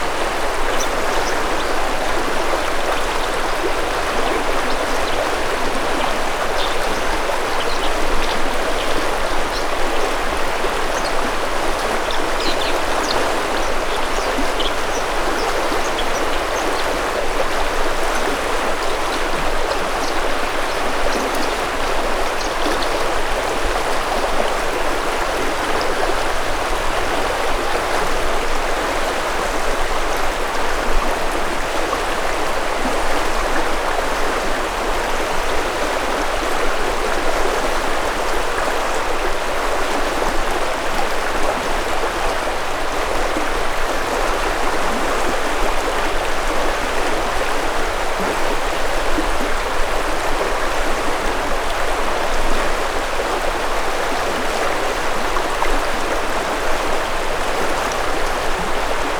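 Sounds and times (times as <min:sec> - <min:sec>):
stream flowing: 0:00.0 - 0:59.1
birds singing: 0:06.0 - 0:10.2, 0:12.0 - 0:17.0.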